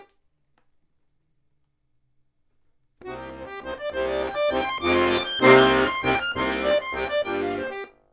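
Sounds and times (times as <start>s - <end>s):
lead bass: 3.1s - 7.8s.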